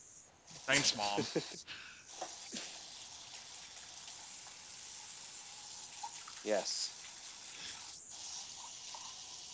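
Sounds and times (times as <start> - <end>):
speech: 0.7 - 1.9, 6.4 - 6.9
water running from a tap filling a water bottle: 2.1 - 9.5.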